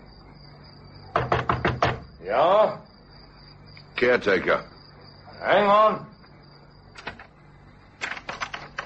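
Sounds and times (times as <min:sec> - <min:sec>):
knocking on the door of a flat: 0:01.1 - 0:02.1
speech: 0:02.3 - 0:02.9, 0:04.0 - 0:04.7, 0:05.4 - 0:06.1.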